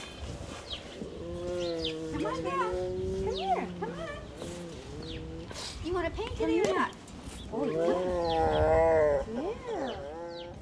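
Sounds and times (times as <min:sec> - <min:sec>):
grumpy female tiger growling at a big cat refuge: 0:00.0 - 0:06.4, 0:07.4 - 0:10.6
speech: 0:02.3 - 0:03.0, 0:05.9 - 0:09.4.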